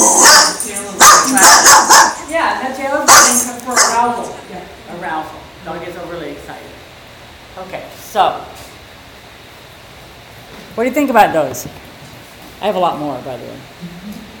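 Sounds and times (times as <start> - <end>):
dog growling yelps and whines: 0.0 - 0.6
dog barking and snapping aggressively: 0.0 - 2.2, 3.1 - 4.0
speech: 8.2 - 8.5, 10.8 - 11.9, 12.6 - 14.2.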